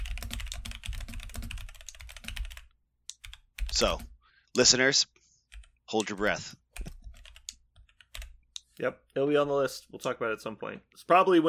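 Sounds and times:
typing on a computer keyboard to write a note: 0.0 - 4.2, 5.5 - 8.4
speech: 3.8 - 5.1, 5.9 - 6.6, 8.8 - 11.4.

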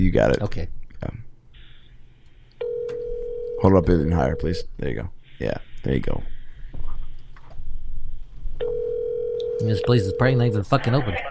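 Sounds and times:
speech: 0.0 - 1.2, 3.6 - 6.3, 9.6 - 11.2
faint noise: 0.0 - 11.2
phone call ring tone through a handset held to a microphone: 2.6 - 4.5, 8.6 - 10.6.

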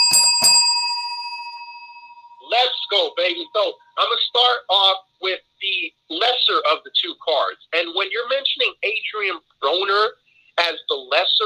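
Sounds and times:
small bell ringing: 0.0 - 3.6
speech: 2.5 - 11.4.

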